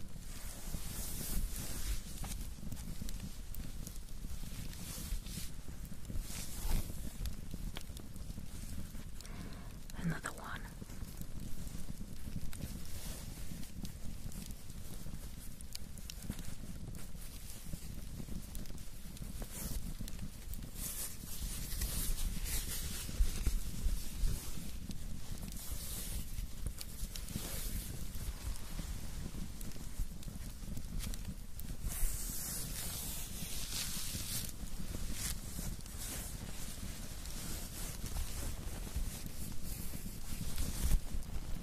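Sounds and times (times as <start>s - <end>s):
steady rain pattering: 0.0s - 41.6s.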